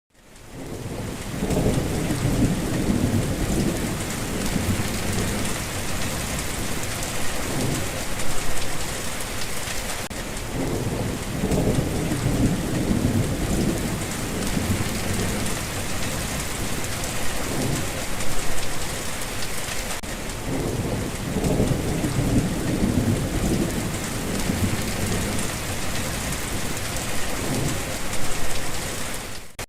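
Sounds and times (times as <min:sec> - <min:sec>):
heavy rain: 0:00.1 - 0:29.6
thunder: 0:00.6 - 0:08.0, 0:10.5 - 0:18.1, 0:20.4 - 0:28.4.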